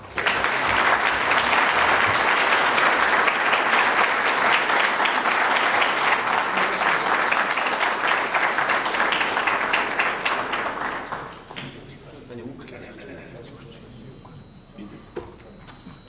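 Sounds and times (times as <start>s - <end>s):
applause from a large audience welcoming a speaker: 0.0s - 11.8s
laughter: 12.6s - 13.9s.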